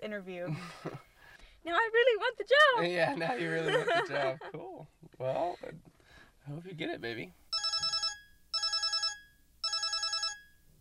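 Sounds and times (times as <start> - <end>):
speech: 0.0 - 7.4
laughter: 3.2 - 5.8
telephone ringing with warbling trill: 7.5 - 10.6.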